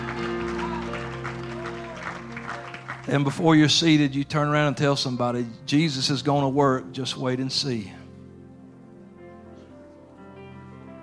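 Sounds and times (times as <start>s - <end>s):
audience shouting: 0.0s - 2.2s
audience clapping: 0.0s - 4.0s
speech: 3.1s - 8.0s.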